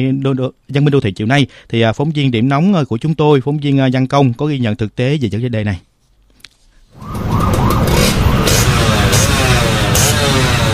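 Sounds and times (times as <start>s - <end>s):
speech: 0.0s - 5.9s
large-displacement motorcycle with modified exhaust revving on a city road: 7.0s - 10.7s.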